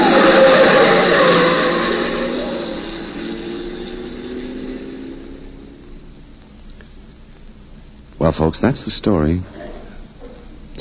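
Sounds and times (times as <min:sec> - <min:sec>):
car engine roaring as car speeds around a sharp corner: 0:00.0 - 0:07.1
speech: 0:08.4 - 0:09.6.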